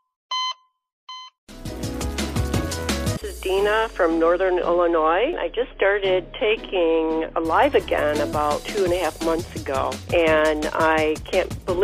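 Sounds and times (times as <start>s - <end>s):
short bright electronic beeps: 0.3s - 1.4s
loud full music with bass and drums: 1.5s - 11.8s
speech: 3.4s - 11.8s.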